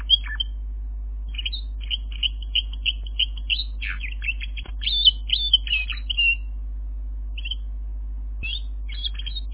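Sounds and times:
canary song of chirps and trills: 0.0s - 0.6s, 1.2s - 6.6s, 7.3s - 7.7s, 8.4s - 9.5s
steady hum: 0.0s - 9.5s.

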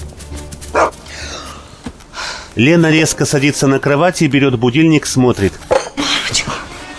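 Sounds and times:
dog barking: 0.7s - 1.0s
speech: 2.6s - 5.8s.

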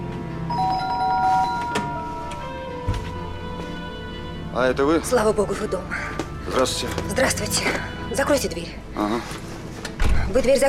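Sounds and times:
doorbell ringing at a home: 0.5s - 2.5s
speech: 4.6s - 9.5s, 10.3s - 10.6s.

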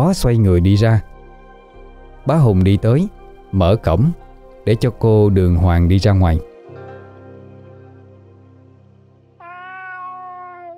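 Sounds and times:
speech: 0.0s - 1.1s, 2.2s - 6.5s
cat meowing: 9.4s - 10.7s.

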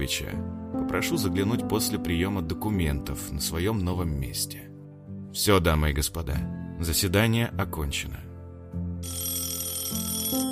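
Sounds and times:
speech: 0.0s - 4.7s, 5.3s - 9.4s
telephone ringing on a desk: 9.0s - 10.5s.

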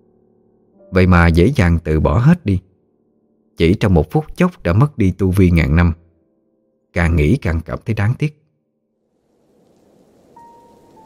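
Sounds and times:
speech: 0.8s - 2.7s, 3.6s - 6.0s, 6.9s - 8.4s
heavy rain falling outside in strong wind: 9.1s - 11.0s.

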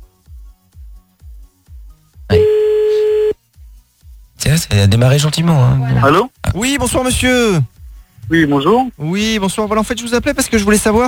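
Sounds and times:
loud steady single-pitch telephone line tone: 2.3s - 3.4s
speech: 4.6s - 11.0s.

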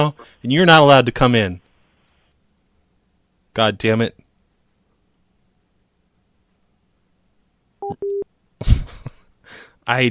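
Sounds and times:
speech: 0.0s - 1.6s, 3.6s - 4.2s, 7.9s - 8.9s, 9.9s - 10.1s
electronic phone keypad tones as buttons are pressed: 7.8s - 8.2s.

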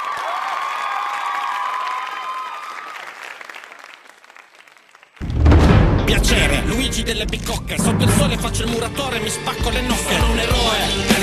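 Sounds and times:
crowd applause: 0.0s - 5.3s
sudden loud sound: 5.2s - 9.6s
speech: 6.2s - 11.2s.

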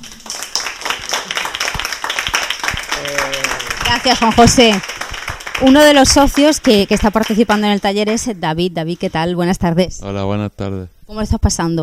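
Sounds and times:
people clapping after a poem recital at a workshop: 0.0s - 9.3s
speech: 3.9s - 4.9s, 5.6s - 11.8s.

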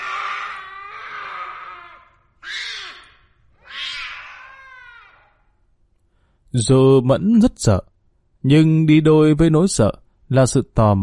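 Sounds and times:
black cat meowing on a table: 2.4s - 5.2s
speech: 6.5s - 11.0s.

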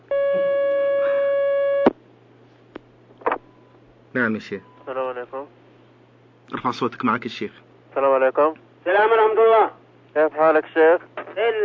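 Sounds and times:
electronic telephone line tone of a call coming through: 0.0s - 1.9s
speech: 4.2s - 5.6s, 6.5s - 11.6s.

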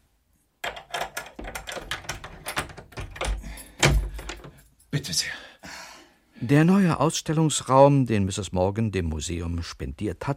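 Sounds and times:
key rattling and turning in the lock of a museum exhibition room door: 0.6s - 4.6s
speech: 5.0s - 5.5s, 6.4s - 10.3s.

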